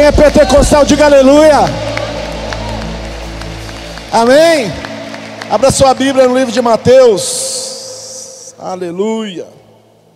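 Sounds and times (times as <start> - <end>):
speech: 0.0 - 1.9, 4.1 - 4.8, 5.5 - 7.4, 8.6 - 9.6
audience clapping and applauding in a large room: 0.0 - 8.1.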